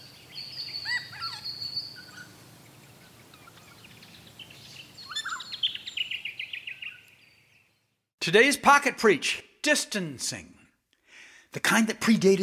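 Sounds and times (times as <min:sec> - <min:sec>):
regent honeyeater calling: 0:00.5 - 0:02.3, 0:04.6 - 0:07.1
speech: 0:08.2 - 0:10.6, 0:11.6 - 0:12.4.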